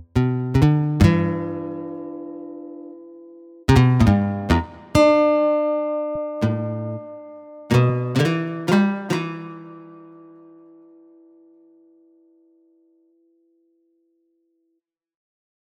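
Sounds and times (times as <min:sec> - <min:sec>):
strummed strings: 0:00.2 - 0:03.0, 0:03.7 - 0:10.2.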